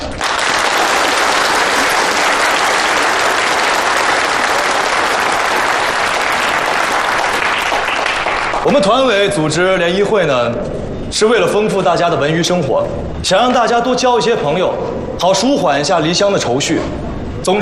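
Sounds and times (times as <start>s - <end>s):
audience applause greeting newly arrived women factory workers at a workers' social evening: 0.0s - 8.7s
speech: 8.7s - 17.6s.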